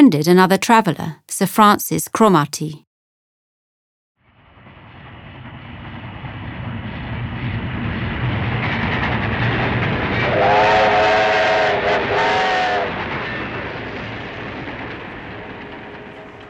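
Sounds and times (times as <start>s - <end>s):
speech: 0.0s - 2.8s
train travelling through India rumbling along the rails: 4.5s - 16.4s
brief horn-like train whistle tone: 10.2s - 13.8s.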